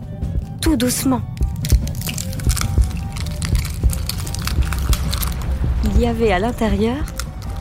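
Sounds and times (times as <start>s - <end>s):
speech: 0.6s - 1.4s, 5.8s - 7.2s
eggshell cracking open: 1.3s - 5.6s, 7.0s - 7.5s
low steady rumble: 1.5s - 7.5s.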